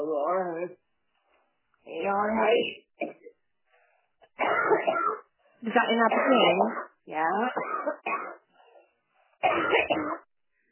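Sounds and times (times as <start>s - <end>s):
speech: 0.0s - 0.8s, 1.9s - 3.2s, 5.6s - 8.0s
harsh chesty rasping coughing fit: 4.4s - 5.3s, 6.1s - 6.6s, 9.4s - 10.3s.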